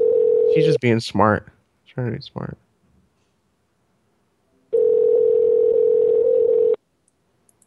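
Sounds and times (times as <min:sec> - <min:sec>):
telephone dial tone after dialing a number: 0:00.0 - 0:00.6, 0:04.8 - 0:06.8
speech: 0:00.6 - 0:02.6.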